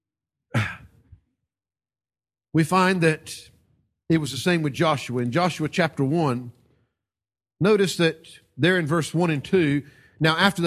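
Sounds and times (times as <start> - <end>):
person sneezing: 0.5 - 1.0
speech: 2.6 - 3.5, 4.1 - 6.6, 7.6 - 10.6.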